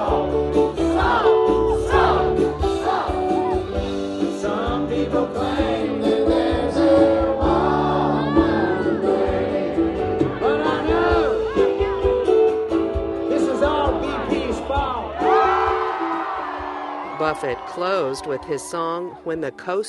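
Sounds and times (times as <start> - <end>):
large concert crowd singing along: 0.0 - 11.9
live music: 0.0 - 19.8
crowd whoops and shouts: 0.8 - 4.0, 7.8 - 9.0, 14.8 - 19.8
speech: 17.4 - 19.8.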